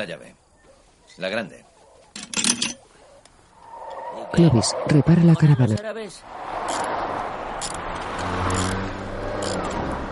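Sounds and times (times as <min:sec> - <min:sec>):
speech: 0:00.0 - 0:00.4, 0:01.2 - 0:02.8, 0:04.2 - 0:06.8
car arriving at a repair yard at high speed: 0:03.5 - 0:10.0.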